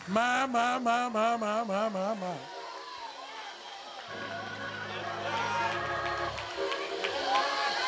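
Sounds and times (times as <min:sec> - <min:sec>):
speech: 0:00.1 - 0:02.6
roomful of people clapping together: 0:02.4 - 0:07.8.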